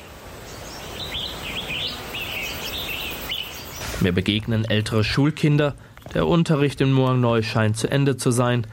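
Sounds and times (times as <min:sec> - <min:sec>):
birds chirping and warbling in a forest: 0:00.0 - 0:04.3
steady hiss of open woodland: 0:00.0 - 0:08.7
speech: 0:04.0 - 0:08.7.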